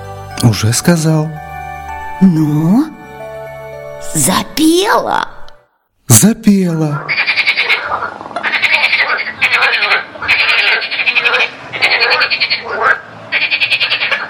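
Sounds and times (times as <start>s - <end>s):
speech: 0.4s - 1.5s, 2.2s - 3.0s, 4.1s - 5.3s, 6.1s - 7.3s
frog croaking in rattling trills: 6.9s - 14.2s.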